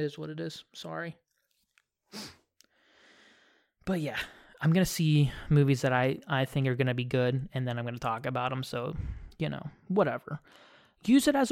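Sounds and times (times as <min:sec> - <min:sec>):
speech: 0:00.0 - 0:01.2, 0:02.1 - 0:02.4, 0:03.9 - 0:11.4
person sniffing: 0:02.1 - 0:02.5
breathy inhale: 0:02.1 - 0:03.8, 0:10.4 - 0:11.0.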